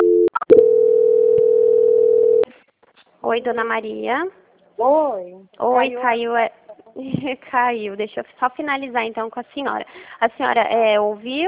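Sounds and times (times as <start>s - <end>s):
telephone tone during a call transfer: 0.0s - 2.4s
speech: 3.3s - 11.4s.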